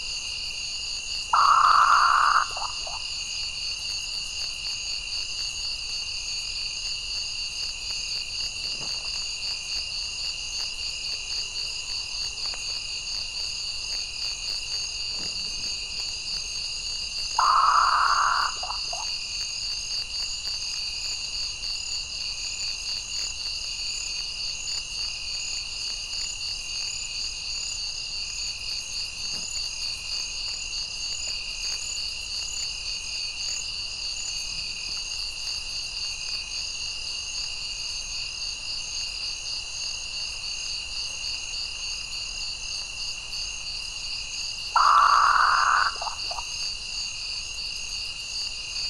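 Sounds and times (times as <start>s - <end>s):
Northern Potoo Nyctibius jamaicensis: 1.4s - 3.0s, 17.4s - 19.1s, 44.8s - 46.5s.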